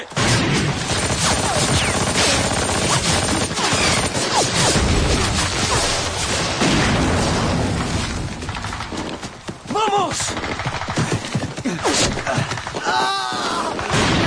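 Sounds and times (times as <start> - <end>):
booming explosions: 0.1 - 8.9, 13.7 - 14.2
rapid gunfire: 0.1 - 14.2.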